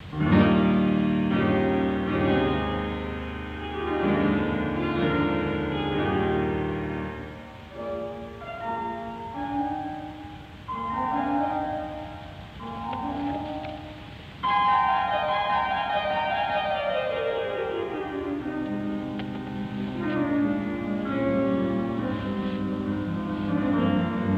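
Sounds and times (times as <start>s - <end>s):
harpsichord: 0.0s - 24.3s
piano: 0.0s - 24.3s.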